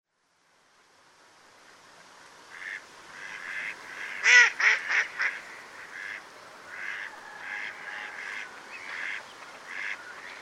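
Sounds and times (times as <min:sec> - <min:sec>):
mallard quacking: 0:02.5 - 0:10.0.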